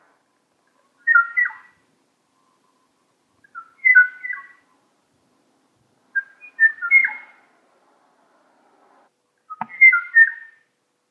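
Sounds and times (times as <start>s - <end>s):
male Kauai o'o bird mating call: 1.0s - 1.8s, 3.4s - 4.8s, 6.1s - 7.4s, 9.5s - 10.7s.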